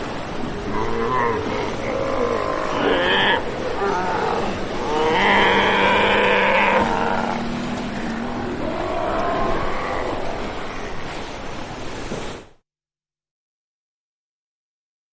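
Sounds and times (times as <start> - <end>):
Steller sea lions roaring in deep harmonic bellows: 0.1 - 11.2
continuous din of other animals: 0.5 - 11.1.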